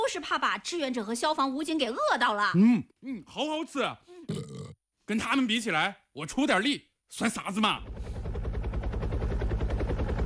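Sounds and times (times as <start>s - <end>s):
speech: 0.1s - 8.1s
firefighting helicopter flying water to a blaze: 7.7s - 10.2s.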